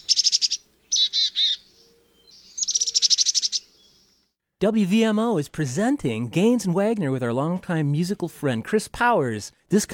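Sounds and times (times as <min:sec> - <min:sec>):
chickadee calls: 0:00.0 - 0:04.2
speech: 0:04.6 - 0:09.9.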